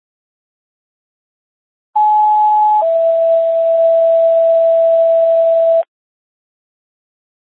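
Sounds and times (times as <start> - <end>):
two-tone sequential fire station dispatch alert: 2.0 - 5.8.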